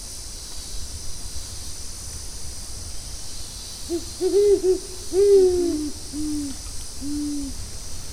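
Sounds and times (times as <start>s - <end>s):
Bubo virginianus: 3.9s - 7.6s.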